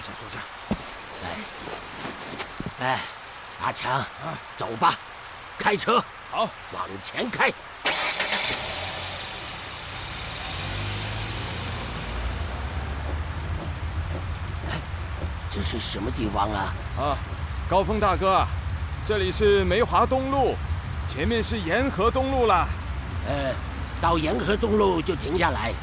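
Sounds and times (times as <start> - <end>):
speech: 0.2 - 1.9, 2.8 - 7.7, 15.6 - 25.8
car engine starting and running: 7.8 - 16.5.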